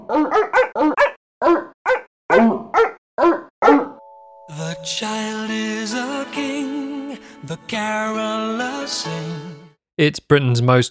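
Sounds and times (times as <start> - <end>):
dog barking: 0.0 - 4.0
speech: 0.1 - 0.7, 4.8 - 10.9.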